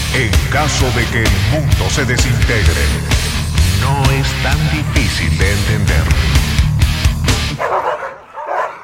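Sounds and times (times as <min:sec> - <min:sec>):
speech: 0:00.1 - 0:06.4
small dogs yelping high-pitched: 0:07.3 - 0:08.8
several small dogs barking and yipping: 0:07.5 - 0:08.8.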